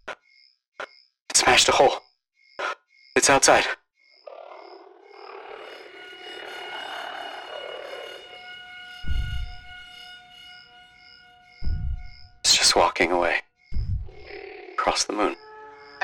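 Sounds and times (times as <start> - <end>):
speech: 1.4 - 2.0, 3.2 - 3.8, 13.0 - 13.4, 15.0 - 15.4
murky rumble: 4.6 - 13.0, 13.8 - 16.0
electronic oxygen alarm droning with steady layered tones: 4.7 - 13.1, 13.7 - 16.0
faint repeating pulse: 5.0 - 12.7, 13.7 - 16.0
sudden low thump: 9.0 - 9.8, 11.6 - 12.4, 13.8 - 14.3.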